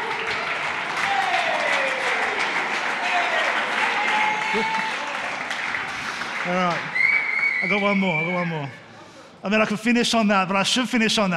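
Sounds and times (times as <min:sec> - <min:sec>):
applause from a sizable audience: 0:00.0 - 0:07.8
faint voices and whoops: 0:01.0 - 0:05.3, 0:06.7 - 0:09.0
speech: 0:04.5 - 0:05.0, 0:06.4 - 0:07.0, 0:07.6 - 0:08.8, 0:09.4 - 0:11.3.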